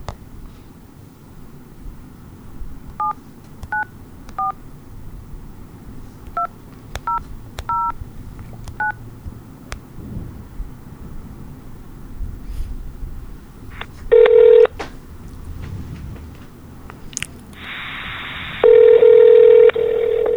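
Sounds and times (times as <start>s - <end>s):
loud long electronic telephone ringing tones: 3.0s - 4.6s, 7.1s - 8.0s, 8.8s - 9.0s, 14.1s - 14.7s, 18.6s - 20.3s
telephone keypad tones as a number is dialed: 3.0s - 4.6s, 6.4s - 8.0s, 8.7s - 9.0s, 14.1s - 14.7s.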